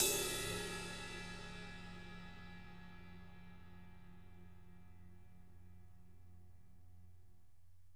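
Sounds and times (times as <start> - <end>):
ride cymbal from a drum kit: 0.0 - 2.8.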